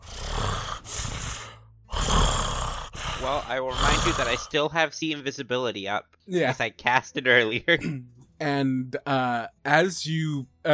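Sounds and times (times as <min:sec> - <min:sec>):
voice imitating heavy rasping creature breathing: 0:00.0 - 0:04.6
speech: 0:03.2 - 0:10.7.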